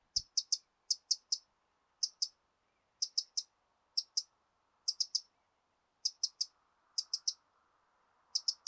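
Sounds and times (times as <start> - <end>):
Eurasian wren Troglodytes troglodytes ticking calls: 0.0 - 2.4, 3.0 - 5.4, 6.0 - 7.4, 8.3 - 8.6.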